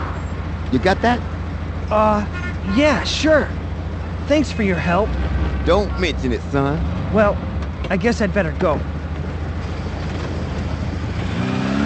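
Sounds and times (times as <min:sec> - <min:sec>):
heavy truck engine rumbling: 0:00.0 - 0:11.8
speech: 0:00.7 - 0:01.3, 0:01.9 - 0:03.6, 0:04.3 - 0:08.9.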